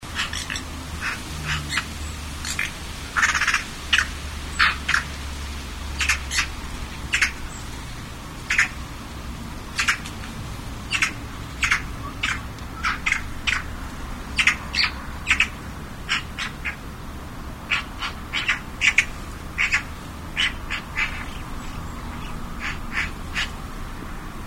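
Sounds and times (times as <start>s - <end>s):
magpie chattering: 0.1s - 5.1s, 6.0s - 6.5s, 7.1s - 7.4s, 8.5s - 8.8s, 9.8s - 10.1s, 10.9s - 13.7s, 14.4s - 16.8s, 17.7s - 23.6s.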